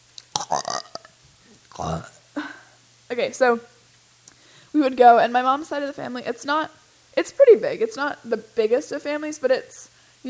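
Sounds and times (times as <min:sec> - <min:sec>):
short gravelly burp: 0:00.3 - 0:02.2
speech: 0:01.8 - 0:02.2, 0:03.1 - 0:03.7, 0:04.7 - 0:10.2.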